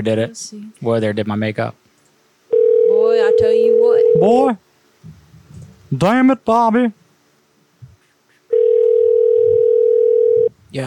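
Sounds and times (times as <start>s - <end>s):
speech: 0.0s - 1.8s, 3.1s - 5.2s, 5.9s - 7.0s
electronic phone ringback tone while calling: 2.5s - 4.3s, 8.5s - 10.5s.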